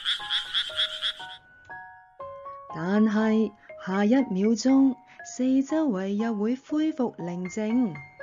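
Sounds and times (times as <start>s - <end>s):
frog croaking: 0.0s - 1.4s
speech: 0.1s - 1.8s, 2.8s - 8.1s.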